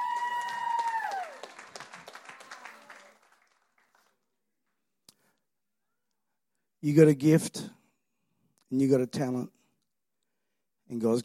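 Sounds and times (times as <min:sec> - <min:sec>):
people cheering: 0:00.0 - 0:04.1
church audience applause: 0:00.0 - 0:04.2
speech: 0:06.8 - 0:07.8, 0:08.7 - 0:09.6, 0:10.9 - 0:11.2.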